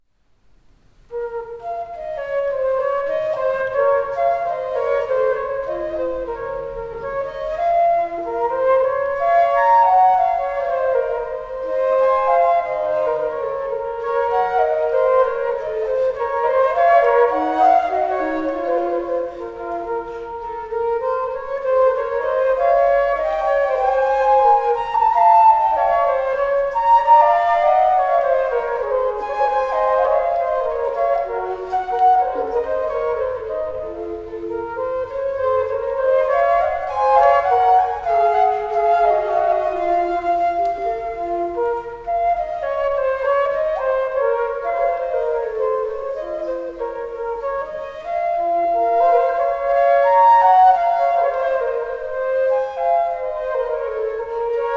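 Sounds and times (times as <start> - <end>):
flute duo playing a rondeau: 1.0 - 54.7.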